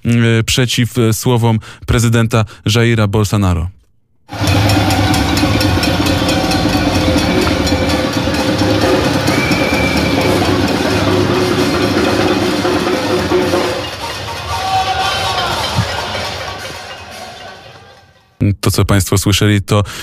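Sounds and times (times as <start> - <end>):
speech: 0.2 - 4.5, 18.4 - 20.0
pots and kitchen utensils banged by protesting residents of São Paulo Brazil: 4.3 - 18.2.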